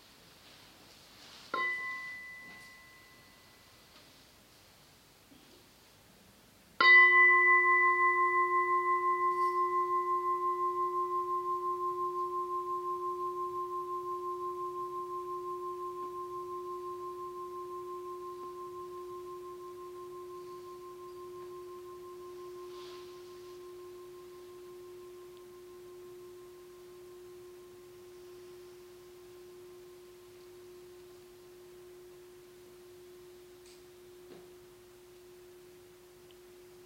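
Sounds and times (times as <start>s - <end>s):
small bell struck to close a practice session: 1.6s - 3.7s, 6.8s - 26.5s.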